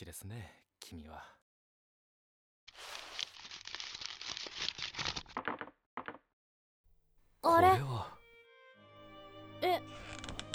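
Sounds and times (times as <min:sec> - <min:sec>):
speech: 0:00.0 - 0:01.4, 0:07.4 - 0:08.2
paper crinkling and tearing as a delivered parcel is opened: 0:02.7 - 0:05.5.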